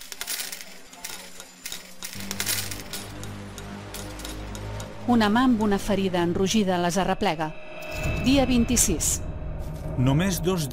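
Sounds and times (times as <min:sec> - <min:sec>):
slot machine euro coins clinking and spilling into a tray: 0:00.0 - 0:04.9
speech: 0:05.1 - 0:07.6, 0:08.2 - 0:09.2, 0:10.0 - 0:10.7.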